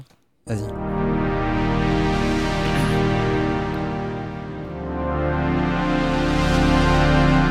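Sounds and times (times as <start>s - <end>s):
speech: 0.5s - 0.9s
rich sustained synthesizer chord droning: 0.5s - 7.5s.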